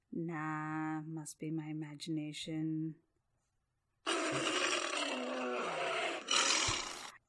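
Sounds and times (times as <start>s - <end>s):
speech: 0.2s - 3.1s
tiger roar: 4.1s - 7.1s.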